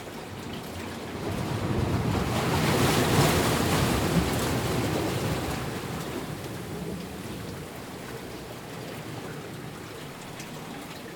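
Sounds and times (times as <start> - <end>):
harbour waves on rocks: 0.2 - 11.1.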